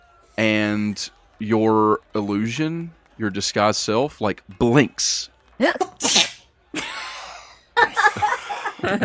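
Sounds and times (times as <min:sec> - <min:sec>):
speech: 0:00.4 - 0:06.3, 0:08.8 - 0:09.0
person sneezing: 0:06.0 - 0:06.4
people laughing: 0:06.6 - 0:09.0.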